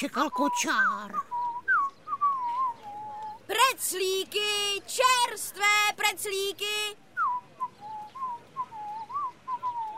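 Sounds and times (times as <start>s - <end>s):
speech: 0.0s - 1.3s, 3.5s - 7.0s
boy whistling an opera aria on street: 0.0s - 3.4s, 7.2s - 9.9s
faint hiss: 0.0s - 9.9s.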